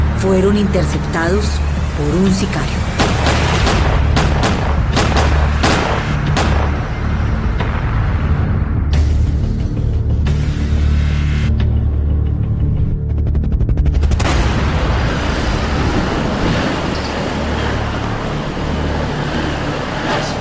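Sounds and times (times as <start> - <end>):
heavy low rumble: 0.0 - 20.3
speech: 0.2 - 3.4
gunfire bursts from an attack on people in a car: 3.0 - 6.9.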